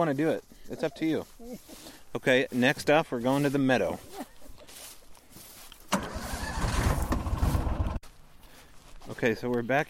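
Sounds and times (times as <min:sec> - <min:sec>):
speech: 0:00.0 - 0:04.3, 0:09.2 - 0:09.8
Gator utility vehicle engine driving into an open meadow: 0:05.9 - 0:08.0.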